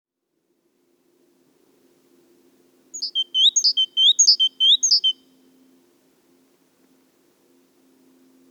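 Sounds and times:
great tit Parus major calling: 0:03.0 - 0:05.2.

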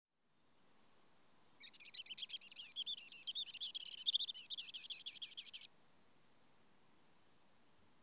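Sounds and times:
Eurasian wren song Troglodytes troglodytes: 0:01.6 - 0:05.7.

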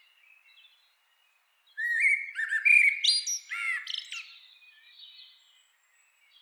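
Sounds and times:
Common blackbird Turdus merula singing warbled notes: 0:01.8 - 0:05.2.

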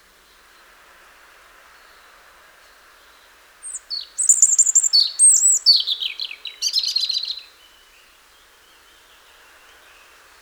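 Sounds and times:
European robin Erithacus rubecula song: 0:03.0 - 0:10.3.

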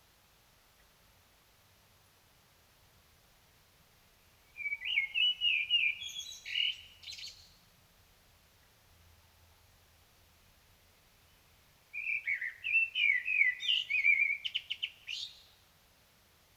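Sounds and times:
common blackbird Turdus merula song fragments: 0:04.6 - 0:07.6, 0:12.0 - 0:15.6.

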